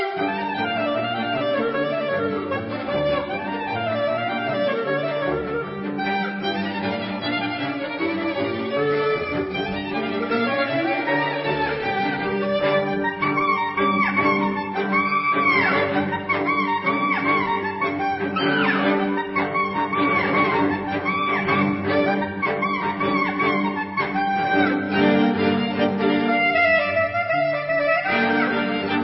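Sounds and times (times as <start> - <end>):
chamber ensemble playing Jewish wedding music: 0.1 - 29.0.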